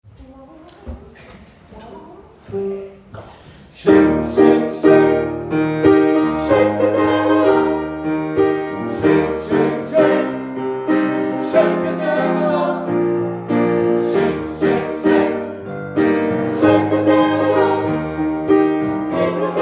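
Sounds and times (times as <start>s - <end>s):
gospel choir with all voices singing: 3.7s - 19.6s.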